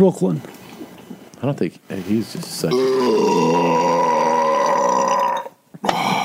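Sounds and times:
speech: 0.0s - 0.6s, 1.4s - 3.9s
long loud guttural burp: 2.7s - 6.2s.

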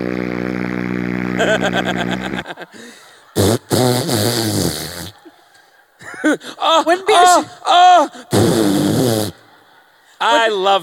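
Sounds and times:
loud buzzy fart sound effect: 0.0s - 2.4s, 3.4s - 5.2s, 8.3s - 9.4s
people laughing: 1.3s - 8.3s, 9.0s - 10.8s.

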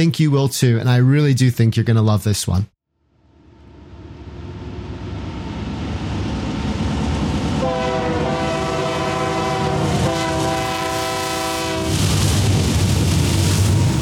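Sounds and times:
speech: 0.0s - 2.7s
freight train passing under footbridge: 3.6s - 14.0s
sustained freight train horn blast: 7.6s - 12.1s.

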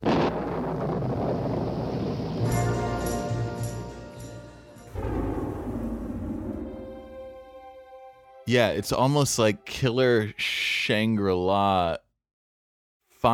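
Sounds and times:
thunder rumbling at the beginning of a song: 0.0s - 4.1s, 4.9s - 7.8s
speech: 8.5s - 12.0s.

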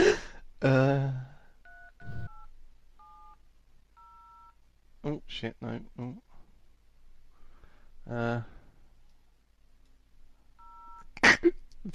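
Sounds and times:
person's brief exclamations and mutterings: 0.0s - 1.3s
speech: 0.6s - 1.3s, 5.0s - 6.3s, 8.1s - 8.6s, 11.4s - 11.9s
phone keypad tones while dialing a number: 1.6s - 3.4s, 4.0s - 4.6s, 10.6s - 11.1s.

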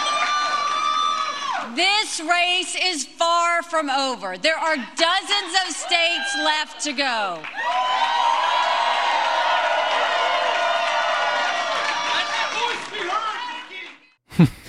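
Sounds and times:
large crowd at a political rally roaring and cheering: 0.0s - 1.8s, 5.0s - 14.1s
speech: 1.8s - 8.2s.

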